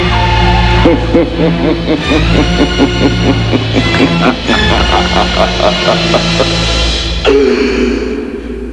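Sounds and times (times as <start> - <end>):
background music: 0.0 - 8.7
vampire laughing: 0.8 - 7.7.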